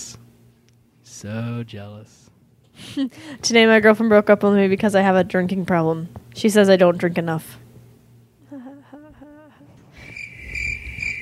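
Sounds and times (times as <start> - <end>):
speech: 1.2 - 7.6
crickets chirping: 10.0 - 11.2.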